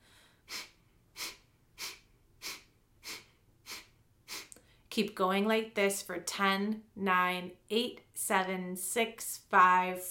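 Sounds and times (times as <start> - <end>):
forceful exhalations through the nose during an abdominal breathing exercise: 0.0 - 4.6
speech: 5.0 - 10.0.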